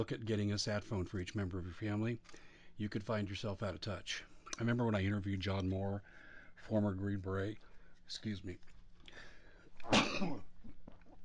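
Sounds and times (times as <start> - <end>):
speech: 0.0 - 10.8
person coughing at a microphone: 9.8 - 10.5.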